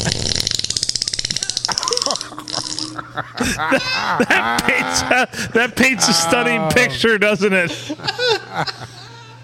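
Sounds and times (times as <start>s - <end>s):
wet airy fart sound effect: 0.0s - 2.9s
laughter: 1.4s - 7.0s, 7.6s - 9.4s
voices reacting: 2.3s - 7.8s
speech: 3.2s - 8.8s.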